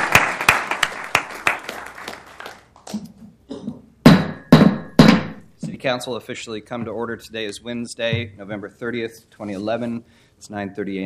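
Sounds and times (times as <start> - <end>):
small group clapping: 0.0 - 3.1
loud sharp knocks: 4.0 - 5.5
speech: 5.8 - 11.0.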